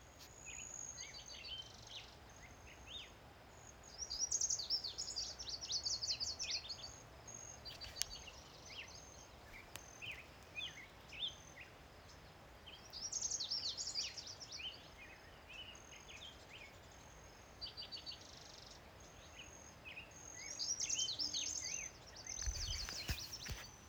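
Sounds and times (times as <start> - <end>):
Virginia's warbler singing: 0.4 - 23.8.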